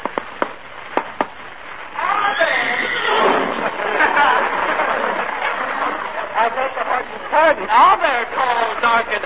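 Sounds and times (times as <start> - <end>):
horse whinnying: 2.0 - 4.0
laughter: 3.1 - 9.2.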